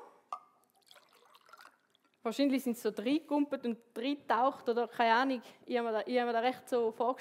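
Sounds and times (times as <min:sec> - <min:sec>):
spring water dripping and trickling into a small container: 0:00.2 - 0:02.4
speech: 0:02.2 - 0:07.2.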